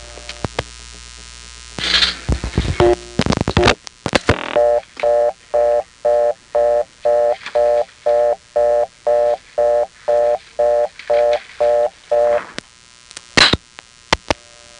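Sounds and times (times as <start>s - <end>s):
telephone line noise: 0.0s - 14.7s
telephone reorder tone from a step exchange tone plant: 2.8s - 12.6s
telephone line clicks: 3.2s - 14.4s.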